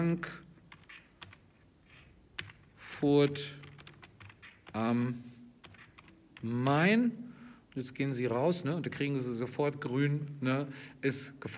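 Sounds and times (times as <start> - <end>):
speech: 0.0 - 0.5, 3.0 - 3.6, 4.7 - 5.3, 6.4 - 11.5
typing on a computer keyboard: 0.7 - 6.8.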